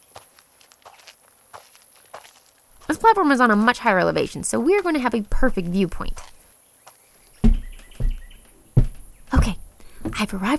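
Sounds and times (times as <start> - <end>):
soft footsteps of a hiker climbing uphill on a trail: 0.0 - 10.5
speech: 3.0 - 6.3, 10.2 - 10.5.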